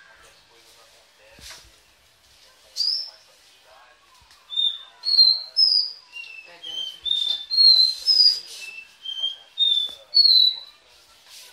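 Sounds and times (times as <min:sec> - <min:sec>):
Belgian canary singing sustained clear whistled notes: 0:04.5 - 0:10.7.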